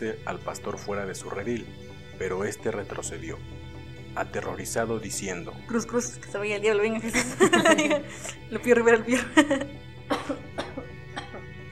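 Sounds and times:
speech: 0:00.0 - 0:03.6, 0:04.2 - 0:10.6
laughter: 0:07.0 - 0:09.7
person coughing: 0:10.1 - 0:11.5.

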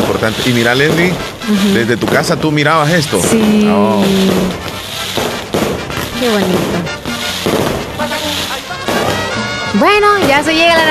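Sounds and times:
firework rockets bursting with sharp booms: 0:00.0 - 0:10.8
speech: 0:00.1 - 0:05.2, 0:06.2 - 0:06.9, 0:09.8 - 0:10.8.

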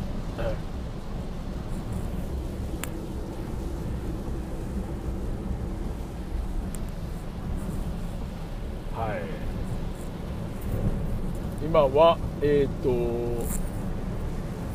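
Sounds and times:
low constant rumble of a moving car: 0:00.0 - 0:14.7
steady rain hissing while driving: 0:00.0 - 0:14.7
speech: 0:11.8 - 0:13.7.

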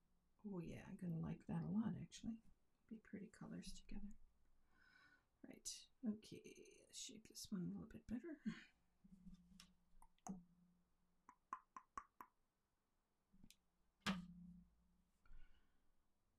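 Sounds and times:
speech: 0:00.4 - 0:04.2, 0:05.4 - 0:09.4, 0:10.3 - 0:10.5
sharp tongue clicks: 0:11.3 - 0:12.4.

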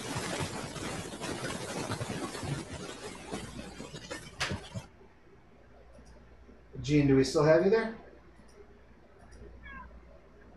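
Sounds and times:
steady low hum: 0:02.0 - 0:10.5
speech: 0:06.9 - 0:08.0
cat meowing: 0:09.6 - 0:10.0.

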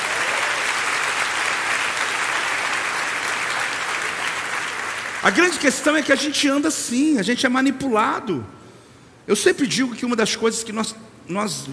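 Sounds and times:
large audience applause: 0:00.0 - 0:05.3
speech: 0:05.2 - 0:08.6, 0:09.3 - 0:11.7.

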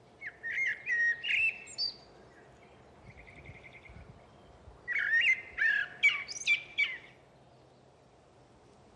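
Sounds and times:
common blackbird singing fluting phrases with twittering flourishes: 0:00.2 - 0:07.9.

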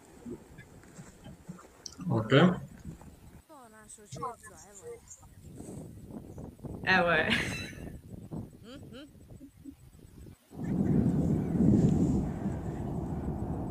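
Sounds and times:
speech: 0:02.1 - 0:02.7, 0:06.9 - 0:07.7
geyser erupting with water and steam: 0:10.5 - 0:13.6.

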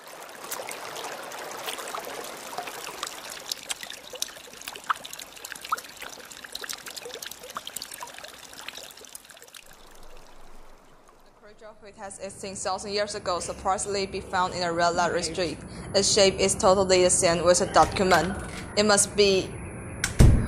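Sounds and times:
water poured for a drink, pouring and trickling: 0:00.0 - 0:11.9
speech: 0:11.8 - 0:19.6.

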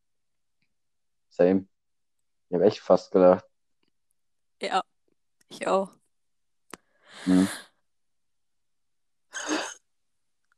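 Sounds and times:
speech: 0:01.4 - 0:01.7, 0:02.5 - 0:03.5, 0:04.6 - 0:04.9, 0:05.5 - 0:06.0, 0:07.2 - 0:07.6
loud breathy sneeze: 0:07.2 - 0:07.6.

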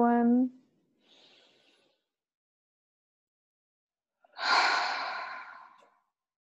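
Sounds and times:
deep breath in and out: 0:01.0 - 0:02.1, 0:04.3 - 0:06.0.

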